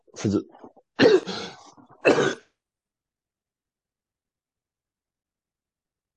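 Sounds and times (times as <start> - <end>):
speech: 0.2 - 2.4
harsh throaty coughing: 1.0 - 2.6.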